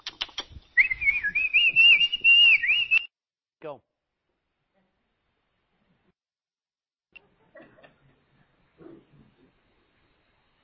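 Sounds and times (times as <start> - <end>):
person whistling in imitation of a shepherd calling sheep: 0.8 - 3.1
speech: 3.6 - 3.9.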